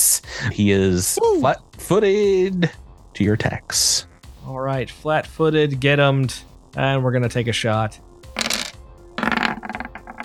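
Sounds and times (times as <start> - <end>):
speech: 0.4 - 8.1
dice clattering across a hard tabletop: 8.4 - 10.2.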